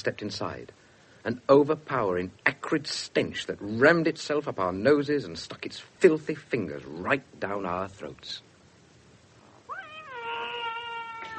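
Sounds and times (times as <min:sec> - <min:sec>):
speech: 0:00.0 - 0:08.5
faint hiss: 0:00.0 - 0:11.3
cat meowing in a house of stray cats: 0:09.7 - 0:11.3.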